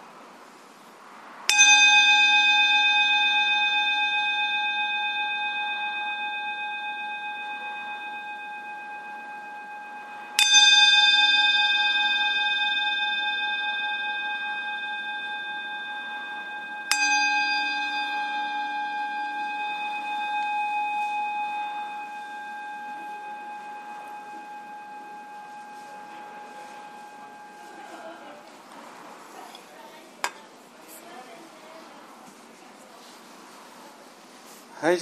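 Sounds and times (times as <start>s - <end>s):
bell struck: 1.5s - 29.0s.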